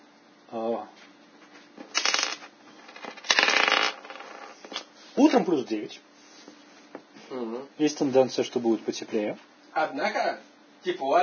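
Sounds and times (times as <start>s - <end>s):
die rolled on a hard tabletop: 1.9s - 4.8s
speech: 5.2s - 6.1s, 7.3s - 11.2s.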